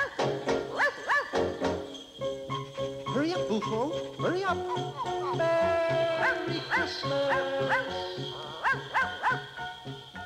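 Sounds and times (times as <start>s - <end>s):
dog barking: 0.7s - 1.6s, 8.5s - 9.6s
steady chiming tones: 1.7s - 10.2s
speech: 3.5s - 9.2s.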